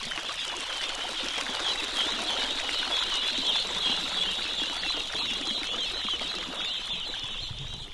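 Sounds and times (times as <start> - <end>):
ducklings peeping at the edge of a rice paddy: 0.4 - 7.9.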